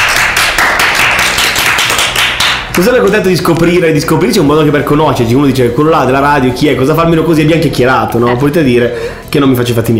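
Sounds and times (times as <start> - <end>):
applause in a studio: 0.0 - 3.3
speech: 2.8 - 9.9.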